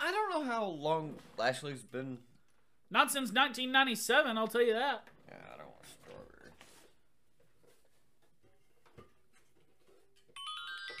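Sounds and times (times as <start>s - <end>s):
speech: 0.4s - 2.3s, 2.9s - 6.3s
phone ringtone electronic melody: 10.4s - 10.9s.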